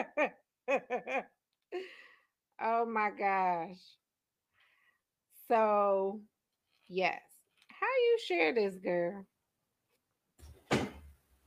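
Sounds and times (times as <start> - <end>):
speech: 0.0 - 1.3, 2.6 - 4.0, 5.5 - 6.3, 6.9 - 9.3
wooden door knocking shut against the frame: 10.6 - 11.1.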